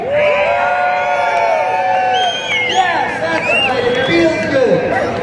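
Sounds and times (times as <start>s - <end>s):
large outdoor parade crowd screaming on cue: 0.0s - 5.1s.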